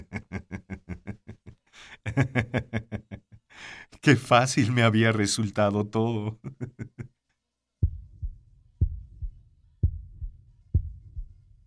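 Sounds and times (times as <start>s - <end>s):
laughter: 0.0s - 3.4s, 6.4s - 7.2s
speech: 1.8s - 2.8s, 4.0s - 6.5s
muffled heartbeat: 7.8s - 11.6s.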